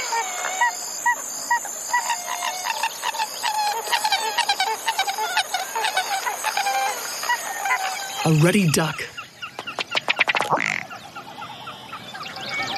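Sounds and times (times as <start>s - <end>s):
thin steady high whine: 0.0s - 9.1s
pied-billed grebe calling with hollow honking notes: 0.0s - 9.3s, 10.0s - 12.6s
speech: 8.3s - 9.2s.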